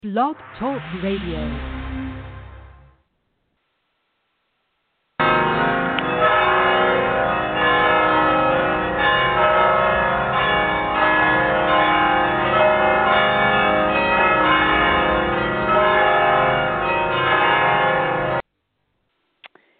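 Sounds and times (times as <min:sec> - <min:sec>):
speech: 0:00.0 - 0:01.8
mission church bells ringing: 0:05.2 - 0:18.4.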